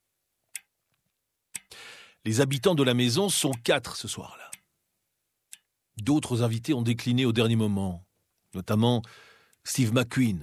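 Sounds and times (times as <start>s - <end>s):
clock ticking on a sideboard in a quiet living room: 0.5s - 0.8s, 1.5s - 1.7s, 2.5s - 4.7s, 5.5s - 6.3s
speech: 2.2s - 4.4s, 6.0s - 10.4s.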